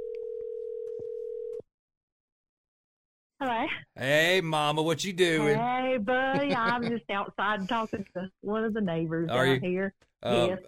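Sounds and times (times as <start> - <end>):
telephone dial tone while placing a call: 0.0 - 1.6
speech: 3.4 - 10.6
laughter: 6.2 - 7.0.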